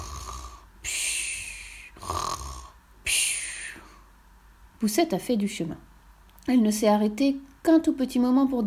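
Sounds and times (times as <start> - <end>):
animal snoring asleep in the grass: 0.0 - 0.7, 2.0 - 2.8
speech: 4.8 - 8.6.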